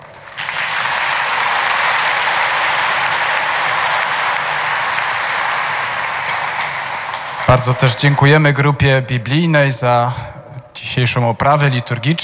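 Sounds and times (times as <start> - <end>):
audience applause at the opening of a pilgrimage: 0.0 - 8.2
speech: 7.5 - 12.2.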